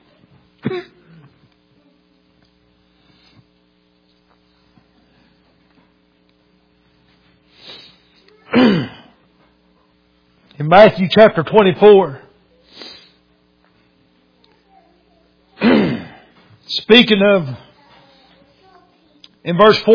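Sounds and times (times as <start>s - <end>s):
steady electrical hum: 0.0s - 19.9s
speech: 0.6s - 1.0s, 10.7s - 12.2s, 16.8s - 17.7s, 19.4s - 19.9s
preacher coughing: 0.6s - 1.4s, 8.5s - 9.2s, 15.6s - 16.3s
preacher clearing throat: 0.6s - 1.5s, 8.5s - 9.2s, 15.6s - 16.4s.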